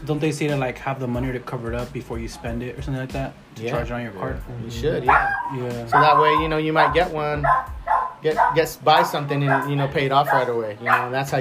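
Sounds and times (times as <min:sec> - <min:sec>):
speech: 0:00.0 - 0:11.3
dogs barking: 0:05.0 - 0:11.3.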